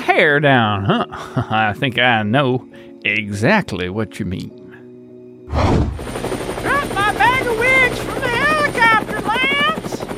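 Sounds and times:
speech: 0:00.2 - 0:04.6, 0:05.5 - 0:06.0
helicopter rotor drone: 0:05.6 - 0:10.1.

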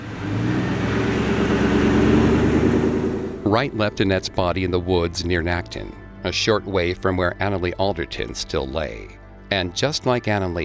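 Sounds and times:
car engine humming as the vehicle drives along: 0:00.0 - 0:04.4
speech: 0:03.5 - 0:10.6.

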